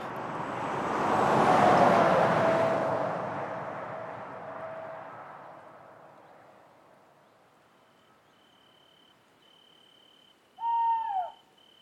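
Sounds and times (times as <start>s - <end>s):
large truck engine rumbling past: 0.0s - 6.2s.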